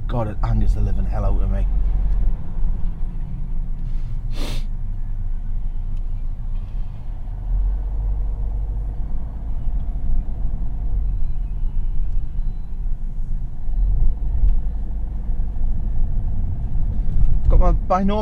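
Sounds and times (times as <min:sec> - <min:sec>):
busy road traffic passing: 0:00.0 - 0:18.2
speech: 0:00.1 - 0:01.9, 0:17.9 - 0:18.2
sharp hiss-like burst: 0:04.3 - 0:04.7.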